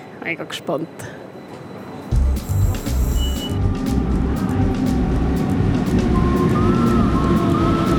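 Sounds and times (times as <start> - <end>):
speech: 0.2 - 1.4
train arriving at station platform with low rumble: 0.6 - 7.9
high metallic train brake squeals: 1.4 - 3.6.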